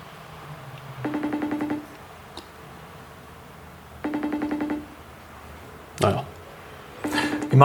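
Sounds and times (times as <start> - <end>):
telephone ringback tone on an unanswered call: 1.0 - 1.9, 4.0 - 5.0, 7.0 - 7.6
speech: 6.0 - 6.3.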